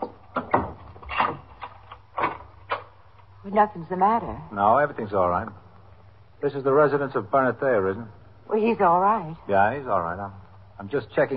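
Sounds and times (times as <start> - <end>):
door opening: 0.0 - 2.9
speech: 3.5 - 5.6, 6.4 - 11.3.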